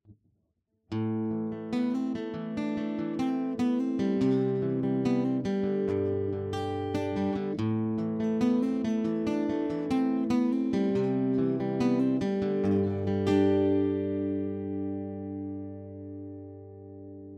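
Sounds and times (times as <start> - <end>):
modelled Martin O-18 acoustic guitar on a Line 6 Variax JTV-69: 0.9 - 17.3.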